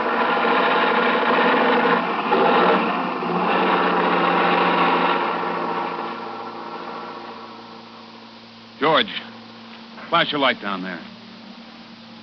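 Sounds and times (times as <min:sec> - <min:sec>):
truck engine straining under heavy load climbing a hill: 0:00.0 - 0:08.3
speech: 0:10.1 - 0:11.1.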